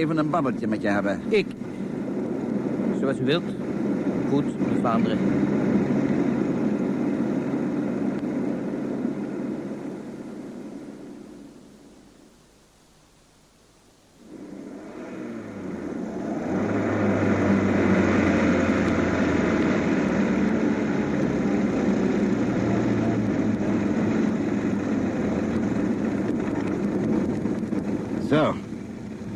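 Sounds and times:
speech: 0.0s - 1.8s, 3.0s - 5.8s
car engine running with a low droning rumble: 0.0s - 12.1s, 14.1s - 29.3s
wind-like noise: 0.0s - 29.3s.

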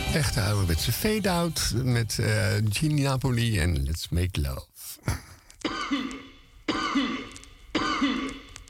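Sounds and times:
speech: 0.2s - 5.3s
man coughing into a microphone: 5.1s - 8.3s.

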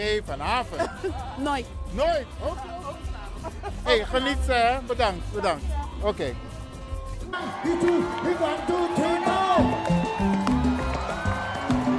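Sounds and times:
speech: 0.0s - 6.5s, 7.3s - 9.4s
laughter: 0.6s - 1.6s, 2.4s - 4.4s
large crowd cheering and whooping at a live show: 7.4s - 11.9s.

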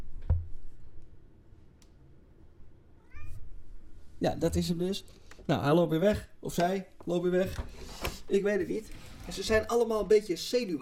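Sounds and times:
white-and-black cat meowing: 3.0s - 3.6s
speech: 4.2s - 10.8s.

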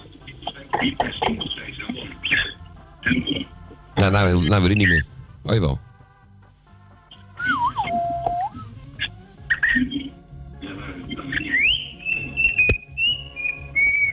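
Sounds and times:
speech: 0.8s - 2.4s, 3.0s - 5.9s
pet bird singing and chirping: 7.2s - 8.7s, 11.4s - 14.1s.

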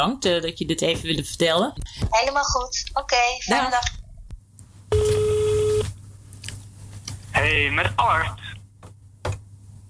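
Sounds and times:
speech: 0.0s - 4.0s, 7.4s - 8.5s
telephone tone while dialing a number: 4.9s - 5.9s.

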